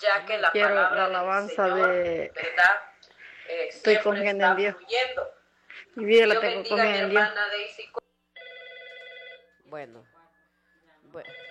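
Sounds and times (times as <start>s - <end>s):
speech: 0.0s - 2.9s, 3.5s - 5.4s, 6.0s - 8.0s, 9.7s - 10.1s, 11.1s - 11.5s
telephone ringing on a call-in line: 8.4s - 9.6s, 11.2s - 11.5s.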